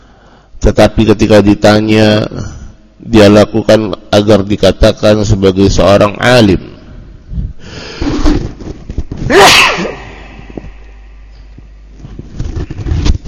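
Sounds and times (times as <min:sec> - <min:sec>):
speech: 0:00.6 - 0:06.7
loud explosive sneeze: 0:09.3 - 0:10.4.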